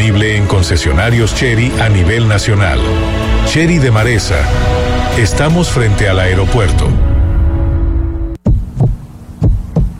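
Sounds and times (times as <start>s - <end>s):
steady low hum: 0.0s - 9.9s
speech: 0.2s - 7.1s
heartbeat thumping in deep beats: 8.4s - 9.9s.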